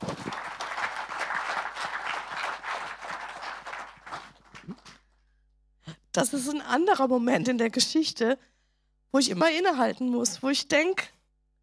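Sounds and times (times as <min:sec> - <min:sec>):
audience applause: 0:00.0 - 0:05.0
speech: 0:06.2 - 0:08.5, 0:09.1 - 0:11.2.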